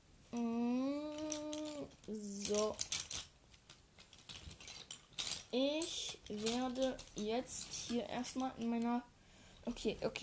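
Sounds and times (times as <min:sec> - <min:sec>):
pens rummaged through in a desk drawer: 0:01.0 - 0:09.0
speech: 0:02.1 - 0:03.0, 0:05.5 - 0:10.2.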